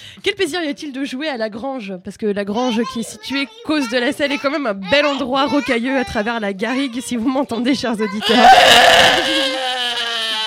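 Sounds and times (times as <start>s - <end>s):
speech: 0.2s - 9.6s
crying wail: 8.2s - 10.4s.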